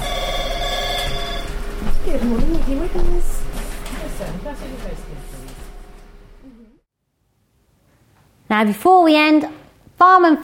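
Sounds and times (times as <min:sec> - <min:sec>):
telephone ringing: 0:00.0 - 0:01.9
speech: 0:02.2 - 0:03.5, 0:04.3 - 0:05.4, 0:08.5 - 0:10.4.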